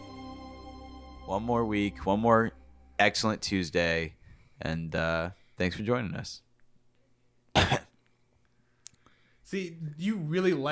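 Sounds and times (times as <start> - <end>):
speech: 1.3 - 6.4, 9.5 - 10.7
person coughing: 7.5 - 8.0.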